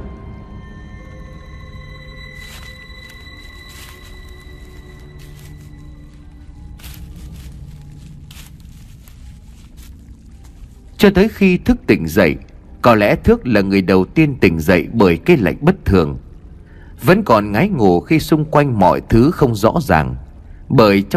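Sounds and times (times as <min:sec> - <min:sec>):
steady low drone with sustained tones: 0:00.0 - 0:10.9
footsteps crunching on dry twigs of firewood in a forest: 0:02.2 - 0:11.1
speech: 0:11.0 - 0:16.2, 0:17.0 - 0:21.1.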